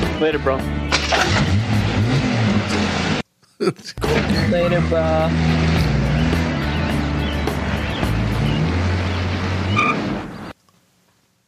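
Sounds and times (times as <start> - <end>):
speech: 0.2 - 1.7, 3.6 - 5.7
loud car engine roaring and revving: 0.9 - 3.3, 4.1 - 10.5.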